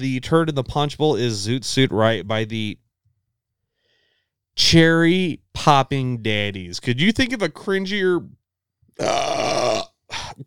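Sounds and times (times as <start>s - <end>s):
speech: 0.0s - 2.8s, 4.6s - 8.4s, 9.0s - 9.4s
long rasping burp: 9.0s - 10.4s.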